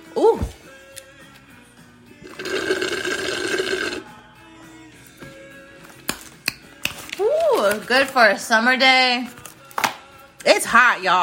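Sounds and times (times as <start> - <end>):
speech: 0.2 - 0.6, 7.9 - 9.4, 10.4 - 11.2
water pouring into a cup of mango-pineapple lemonade: 2.2 - 4.0.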